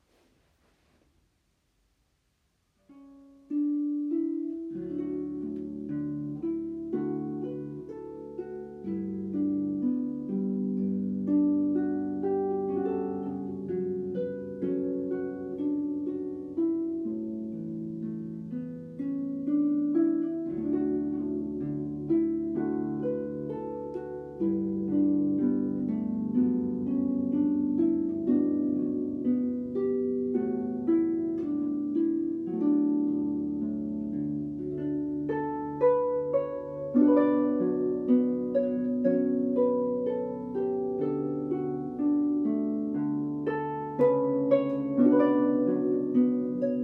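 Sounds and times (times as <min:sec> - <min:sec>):
instrumental music: 0:00.0 - 0:46.8.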